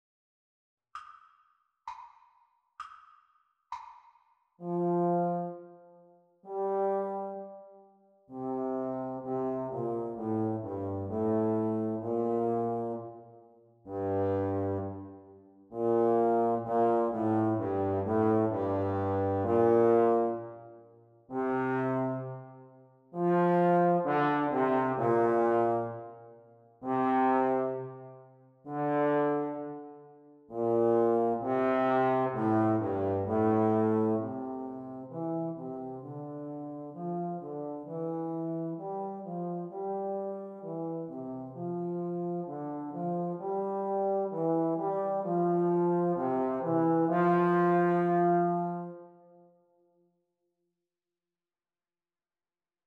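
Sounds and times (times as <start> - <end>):
playalong backing track for trombone practice: 4.6 - 5.8, 6.5 - 7.7, 8.3 - 13.3, 13.9 - 20.6, 21.3 - 22.6, 23.2 - 26.2, 26.8 - 49.0.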